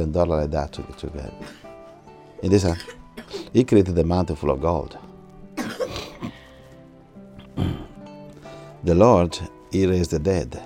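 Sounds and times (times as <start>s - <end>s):
speech: 0.0s - 1.6s, 2.4s - 5.1s, 7.6s - 7.8s, 8.8s - 10.6s
person coughing harshly: 2.7s - 3.5s, 5.6s - 6.4s, 7.6s - 8.0s.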